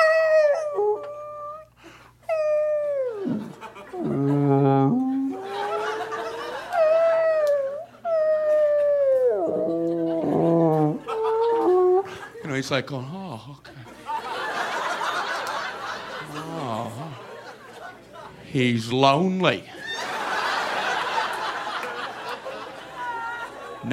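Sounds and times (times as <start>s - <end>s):
faint low hum: 0.0s - 23.9s
long mournful whale calls: 2.3s - 12.2s
laughter: 3.2s - 7.6s, 8.5s - 12.4s, 13.8s - 18.5s, 19.7s - 23.9s
speech: 12.7s - 13.7s, 18.5s - 19.8s.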